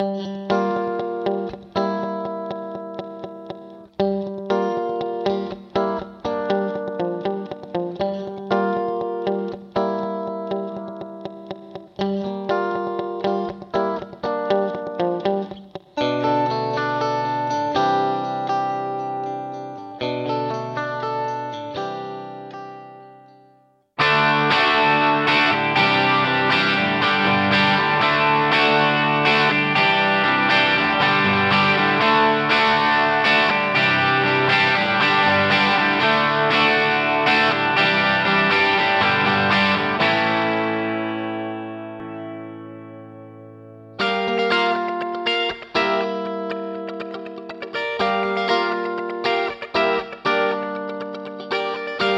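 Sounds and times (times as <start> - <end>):
guitar with vintage digital reverb effect: 0.0 - 52.1.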